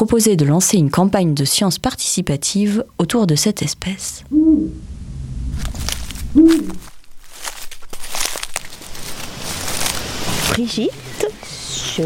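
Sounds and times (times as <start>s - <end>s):
speech: 0.0s - 4.9s, 5.6s - 7.6s, 10.6s - 11.3s
Eurasian eagle-owl hooting: 4.3s - 4.8s, 6.3s - 6.9s
crunching and rustling on dry ground: 5.5s - 12.0s.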